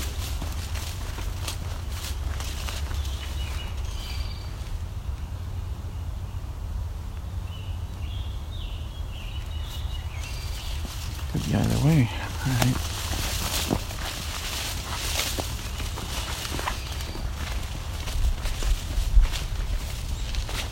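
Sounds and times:
footsteps crunching on a trail: 0.0 - 4.9, 9.1 - 20.6
scarlet tanager singing hoarse phrases in an old-growth woodland: 0.0 - 5.2, 7.5 - 20.6
low rumble: 0.0 - 20.6
speech: 11.6 - 12.9.

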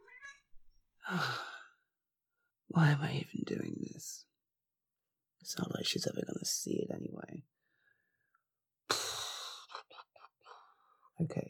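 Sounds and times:
cat meowing: 0.0 - 0.5
breathy sigh-like sound: 1.0 - 1.8
speech: 1.1 - 1.5, 2.7 - 4.3, 5.4 - 7.6, 11.2 - 11.4.

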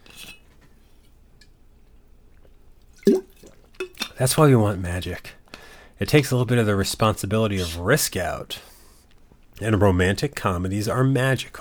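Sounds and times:
water dripping: 1.4 - 4.4
liquid spilling from a glass: 2.4 - 4.2
water splashing: 2.9 - 4.2
glass clinking: 3.0 - 4.2
speech: 4.2 - 5.4, 6.0 - 8.7, 9.6 - 11.5.

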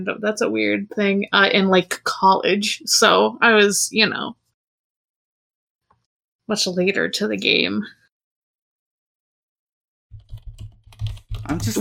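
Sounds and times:
speech: 0.0 - 4.4, 6.5 - 8.0, 11.5 - 11.7
typing on a computer keyboard: 10.1 - 11.7.

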